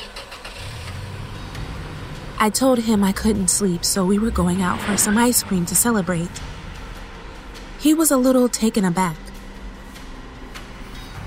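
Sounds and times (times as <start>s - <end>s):
car engine starting: 0.0s - 8.4s
speech: 2.4s - 6.6s, 7.8s - 9.3s.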